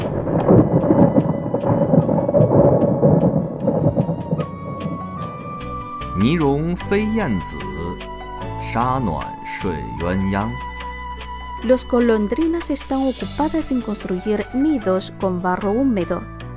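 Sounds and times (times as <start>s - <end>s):
steady rain: 0.0s - 6.8s
thunder rumbling: 0.0s - 14.6s
speech: 6.2s - 7.7s, 8.6s - 10.6s, 11.6s - 16.4s.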